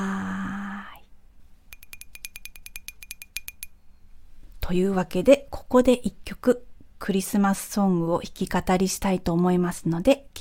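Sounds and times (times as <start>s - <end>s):
glasses clinking in a toast: 1.8s - 3.7s
speech: 4.7s - 10.3s.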